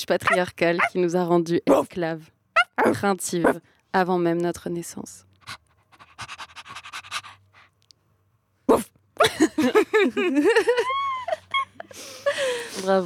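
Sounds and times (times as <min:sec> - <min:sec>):
speech: 0:00.0 - 0:05.6, 0:08.7 - 0:11.1, 0:12.0 - 0:13.0
woman imitating a female dog's whiny yelps and whimpers: 0:00.2 - 0:01.0, 0:02.6 - 0:03.6
laughter: 0:09.2 - 0:12.7.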